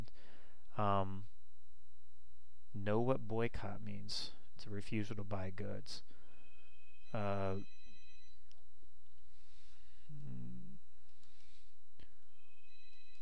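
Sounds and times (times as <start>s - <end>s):
faint steady high hum: 0.0s - 13.2s
speech: 0.8s - 1.4s, 2.8s - 6.2s, 7.1s - 7.8s
telephone ringing: 6.4s - 8.4s, 12.2s - 13.2s.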